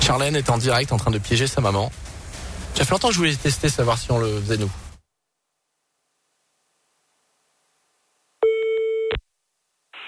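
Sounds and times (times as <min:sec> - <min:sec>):
speech: 0:00.1 - 0:02.2, 0:02.8 - 0:04.9
burst of hissy noise: 0:01.7 - 0:05.0
telephone line tone while calling someone: 0:08.4 - 0:09.2.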